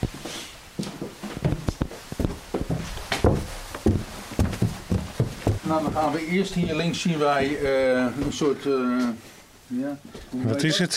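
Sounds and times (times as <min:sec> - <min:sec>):
heavy footsteps climbing a staircase inside a house: 0:00.0 - 0:08.4
speech: 0:05.7 - 0:10.9.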